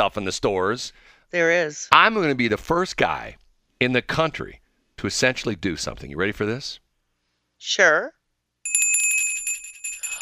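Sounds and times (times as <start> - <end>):
speech: 0.0 - 6.8, 7.6 - 8.2
Salvation Army hand bell ringing rapidly: 8.7 - 10.1.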